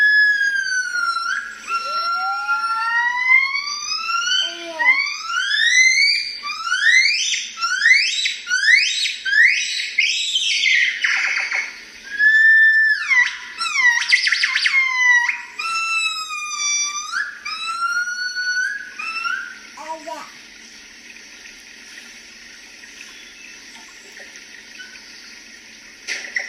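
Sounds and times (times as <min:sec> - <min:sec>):
gibbon whooping: 0:00.0 - 0:11.2, 0:12.1 - 0:20.2.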